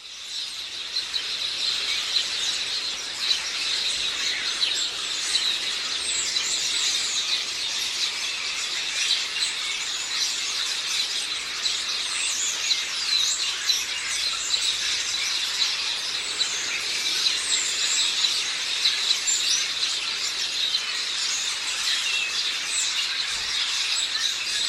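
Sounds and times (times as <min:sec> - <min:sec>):
Passer domesticus house sparrows chirping: 0:00.0 - 0:24.6.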